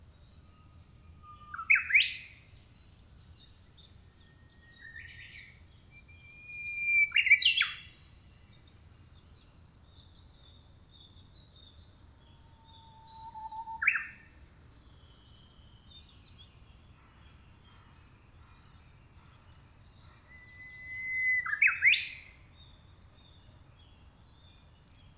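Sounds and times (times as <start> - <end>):
Japanese bush warbler: 4.7 - 7.8, 11.5 - 15.9, 19.6 - 22.2.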